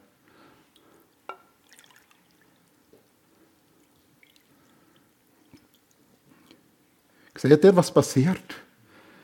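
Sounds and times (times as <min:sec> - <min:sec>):
water poured onto a dry shriveled heart-shaped object: 0:00.7 - 0:06.6
small wet crackles of swelling heart-shaped object: 0:00.7 - 0:07.4
speech: 0:07.4 - 0:08.6.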